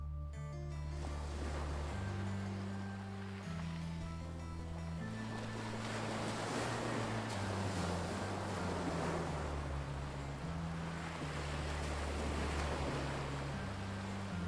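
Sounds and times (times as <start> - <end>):
low sustained musical drone: 0.0 - 14.4
sea surf rolling in: 1.0 - 3.9, 5.0 - 14.4.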